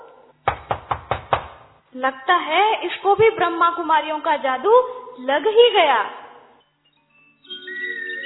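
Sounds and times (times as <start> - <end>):
firm knocks on a wooden door: 0.4 - 1.7
speech: 2.0 - 6.2.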